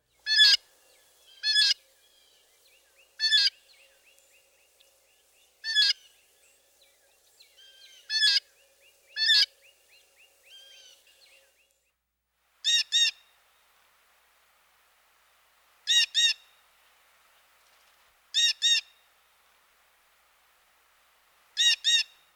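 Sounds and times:
harsh blue jay calls: 0.2 - 0.6, 1.2 - 2.4, 3.0 - 4.2, 5.6 - 6.4, 7.5 - 11.4, 12.6 - 13.4, 15.8 - 16.7, 18.3 - 19.2, 21.4 - 22.3.

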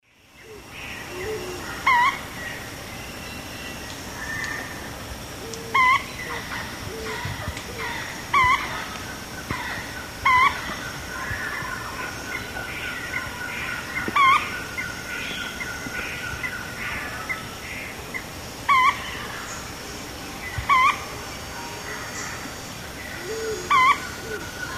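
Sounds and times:
Celeus grammicus call in eastern lowlands of South America: 1.1 - 2.2, 5.4 - 12.4, 13.9 - 14.6, 18.1 - 19.2, 20.7 - 21.1, 23.2 - 24.7.

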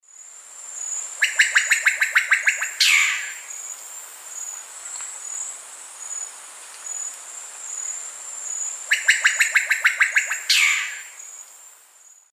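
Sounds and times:
Cacicus solitarius call in the South American Eastern Lowlands: 1.2 - 3.6, 8.9 - 11.3.

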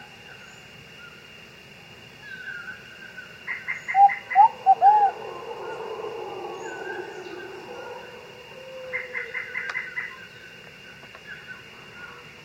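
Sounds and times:
Short-billed Pigeon calling in South America: 3.9 - 10.1.

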